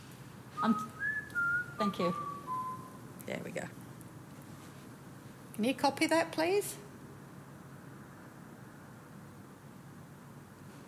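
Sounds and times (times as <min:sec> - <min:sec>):
speech: 0:00.6 - 0:01.0, 0:01.8 - 0:02.3, 0:03.3 - 0:03.8, 0:05.6 - 0:06.8
person whistling badly: 0:00.6 - 0:03.0.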